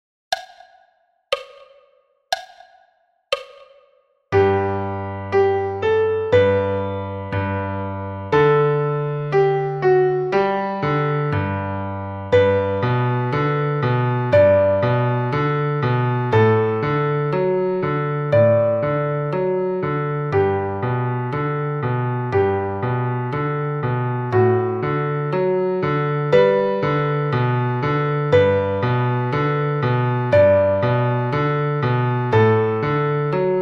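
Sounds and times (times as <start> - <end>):
60 bpm metronome clicks: 0.3 - 4.0
solo piano: 4.3 - 33.6.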